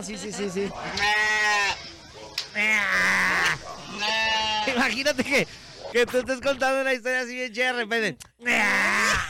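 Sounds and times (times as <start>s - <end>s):
speech: 0.0s - 1.7s, 2.6s - 9.2s
sheep bleating: 0.9s - 1.8s, 2.6s - 4.9s.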